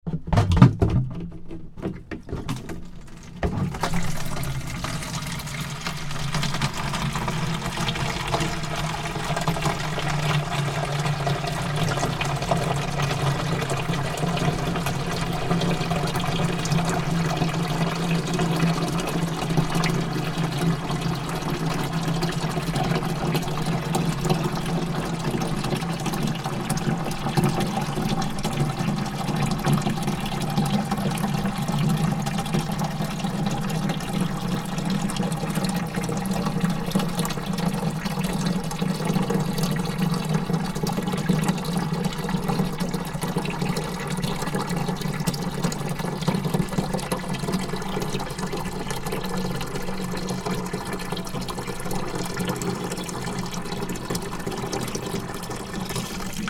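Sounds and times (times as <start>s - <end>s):
plastic watering can clunk: 0.0s - 4.9s
plastic watering can filling from tap from water butt: 0.1s - 56.4s.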